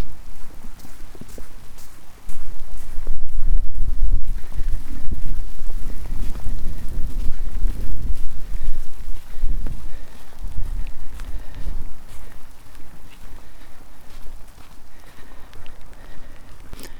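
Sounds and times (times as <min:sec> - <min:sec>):
strong wind gusts across a wet beach buffeting the microphone: 0:02.5 - 0:13.6.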